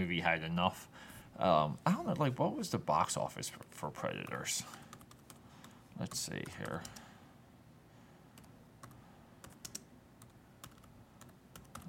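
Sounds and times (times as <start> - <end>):
speech: 0.0 - 4.8, 6.0 - 7.0
soft hum: 0.0 - 11.8
typing on a computer keyboard: 4.2 - 5.4, 6.1 - 7.0, 8.4 - 11.8.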